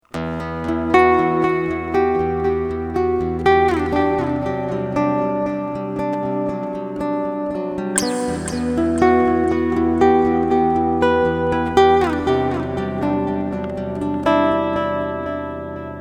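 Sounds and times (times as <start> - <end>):
Silent Guitar with delay effect: 0.1 - 15.9.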